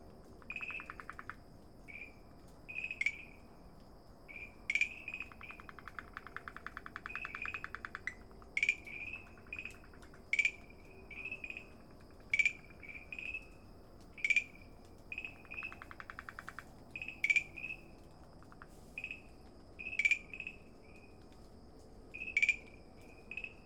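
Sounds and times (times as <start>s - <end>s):
farmland green treefrog calling with short tonal notes at Dalin: 0.4s - 3.4s, 4.3s - 17.8s, 18.4s - 20.6s, 22.2s - 23.6s
farmland green treefrog buzzy pulsed call: 0.5s - 3.4s, 4.3s - 13.4s, 14.2s - 17.8s.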